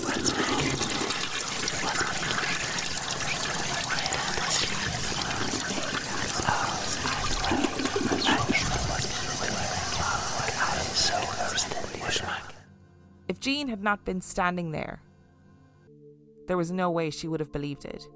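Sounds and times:
toilet flushing: 0.0s - 10.9s
water sloshing and gurgling in a toilet: 0.0s - 12.6s
speech: 13.4s - 15.1s, 16.5s - 18.1s.

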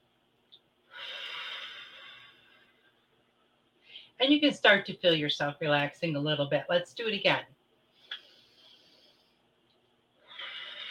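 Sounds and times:
deep breath in and out during a relaxation exercise: 0.9s - 3.0s, 7.9s - 9.4s, 10.2s - 10.8s
speech: 4.2s - 7.6s.

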